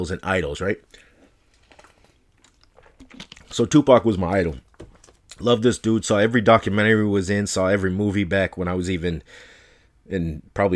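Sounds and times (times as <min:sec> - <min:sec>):
speech: 0:00.0 - 0:01.1, 0:03.1 - 0:04.6, 0:05.4 - 0:09.5, 0:10.1 - 0:10.7
sipping water: 0:00.8 - 0:03.9.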